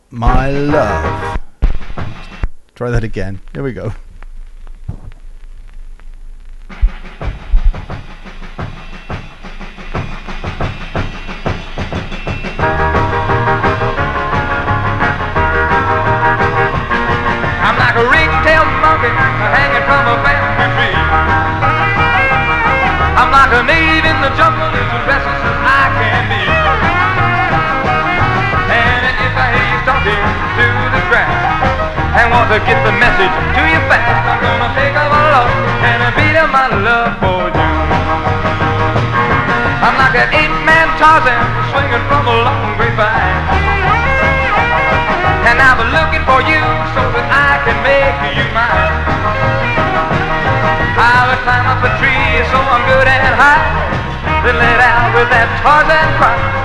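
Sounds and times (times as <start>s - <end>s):
original vinyl pressing of an old rockabilly record: 0.0s - 56.6s
speech: 0.1s - 1.3s, 2.8s - 4.1s.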